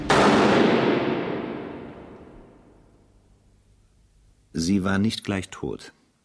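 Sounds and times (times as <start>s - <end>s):
firing squad rifle volley at an execution in a fortress moat: 0.0s - 2.7s
speech: 4.6s - 6.0s.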